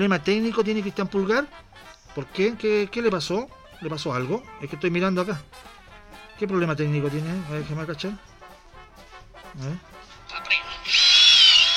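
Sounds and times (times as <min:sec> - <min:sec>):
speech: 0:00.0 - 0:05.8, 0:06.4 - 0:08.3, 0:09.5 - 0:10.6
indistinct talking: 0:10.3 - 0:11.7
small electric drill whining: 0:10.8 - 0:11.7.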